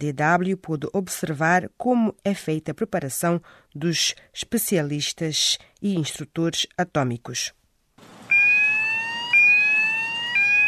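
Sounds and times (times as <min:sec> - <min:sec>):
speech: 0:00.0 - 0:07.6
electronic radiation detector gamma alarm blasts: 0:08.1 - 0:10.6.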